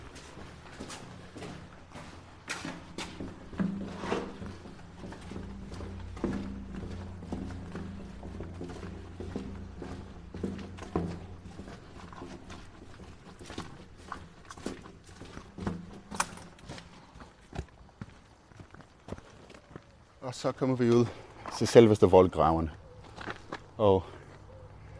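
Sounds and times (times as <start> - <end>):
footsteps on a hard floor in a narrow fortification passage: 0.0 - 19.3
speech: 20.3 - 22.8, 23.8 - 24.1.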